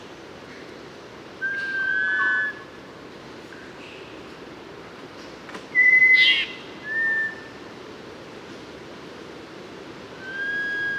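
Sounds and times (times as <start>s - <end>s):
mangrove robin pure whistled song in Papua New Guinea: 1.4s - 2.7s, 5.7s - 7.6s, 10.2s - 10.9s.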